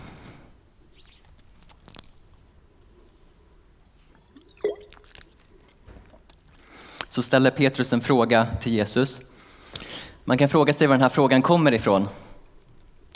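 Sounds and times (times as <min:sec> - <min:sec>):
person drinking water with sips and swallowing: 0:04.1 - 0:06.3
speech: 0:07.2 - 0:09.4, 0:10.3 - 0:12.2.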